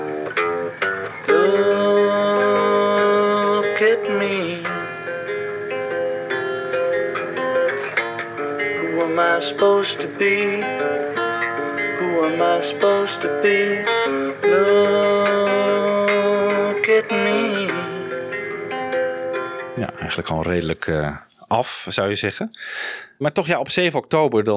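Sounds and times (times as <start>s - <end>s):
fingerpicked acoustic guitar: 0.0s - 20.6s
male voice singing an old song on a demo recording: 1.3s - 5.0s, 8.7s - 11.2s, 11.8s - 18.1s
speech: 9.4s - 10.9s, 12.4s - 14.2s, 20.1s - 24.5s.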